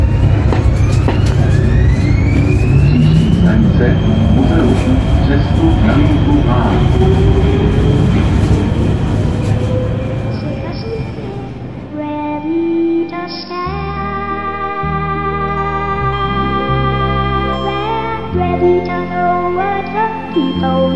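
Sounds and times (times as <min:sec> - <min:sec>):
metro train electric motor whining: 0:00.0 - 0:11.8
metro train rumbling: 0:00.0 - 0:20.9
metro train squealing tones: 0:00.0 - 0:20.9
metro train track noise: 0:00.0 - 0:20.9.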